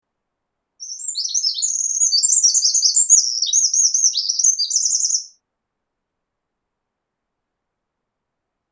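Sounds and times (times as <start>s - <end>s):
Eurasian wren singing: 0.8s - 5.4s.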